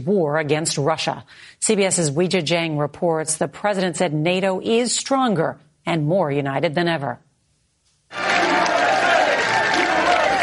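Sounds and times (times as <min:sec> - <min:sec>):
speech: 0:00.0 - 0:07.3
crowd applause: 0:08.1 - 0:10.4
large crowd in Lithuania roaring and cheering during a speech: 0:08.1 - 0:10.4.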